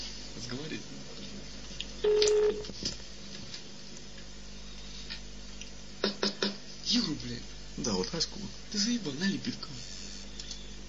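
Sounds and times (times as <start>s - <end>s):
speech: 0.4s - 3.0s, 7.3s - 10.0s
telephone dialing tone electronic beep: 2.0s - 2.6s.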